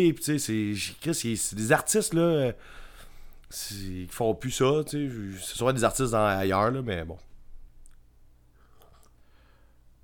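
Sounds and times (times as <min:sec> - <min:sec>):
speech: 0:00.0 - 0:02.8, 0:03.5 - 0:07.3
low steady hum: 0:00.0 - 0:10.0
person sipping a drink with lip clicks, slurp and swallow: 0:08.6 - 0:09.3.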